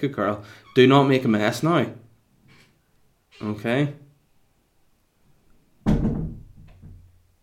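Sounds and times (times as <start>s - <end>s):
speech: 0.0s - 2.0s, 3.4s - 4.0s
door swinging shut with a solid thump: 5.8s - 7.1s.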